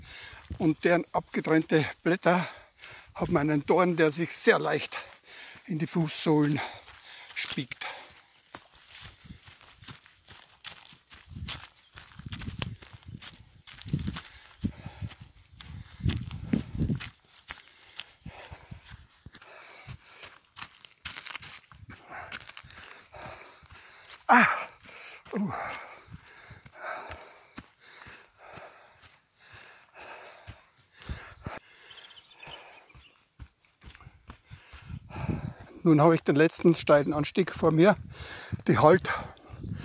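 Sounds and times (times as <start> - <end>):
heavy breathing: 0.0 - 0.6, 2.4 - 3.2, 4.8 - 10.4, 14.3 - 20.6, 21.7 - 33.1, 33.8 - 35.8, 38.0 - 39.8
barefoot footsteps on forest floor strewn with spruce cones: 0.0 - 39.8
speech: 0.6 - 2.6, 3.2 - 5.1, 5.7 - 6.8, 7.6 - 8.0, 35.9 - 39.3.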